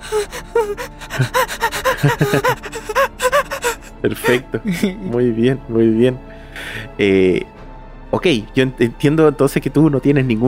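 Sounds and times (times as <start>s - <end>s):
voice imitating a child gasping and holding back sobs: 0.0s - 5.0s, 6.3s - 7.0s
speech: 0.1s - 2.7s, 4.0s - 7.5s, 8.1s - 10.4s
laughter: 0.1s - 5.2s.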